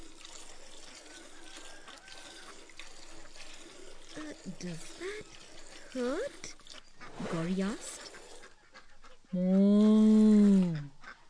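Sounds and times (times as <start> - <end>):
milk squirting from a cow during hand milking: 0.0 - 8.8
speech: 4.3 - 6.6, 7.2 - 7.9, 9.3 - 10.3.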